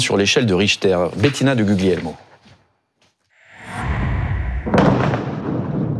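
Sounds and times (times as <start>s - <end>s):
speech: 0.0s - 2.3s
explosion from demolition of underground tunnels: 3.5s - 5.9s
debris noise: 4.5s - 5.9s.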